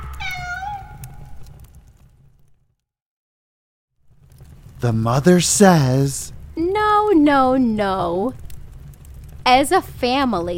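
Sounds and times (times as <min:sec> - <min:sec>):
cat meowing: 0:00.0 - 0:01.4
low rumble: 0:00.0 - 0:02.4, 0:04.1 - 0:10.5
speech: 0:04.8 - 0:06.4, 0:07.1 - 0:08.4, 0:09.5 - 0:10.5.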